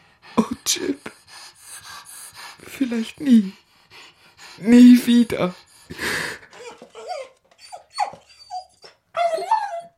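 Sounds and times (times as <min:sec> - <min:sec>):
speech: 0:00.4 - 0:01.1, 0:02.9 - 0:03.6, 0:04.6 - 0:06.0
old dying dog whimpering as it lies down: 0:06.5 - 0:09.9.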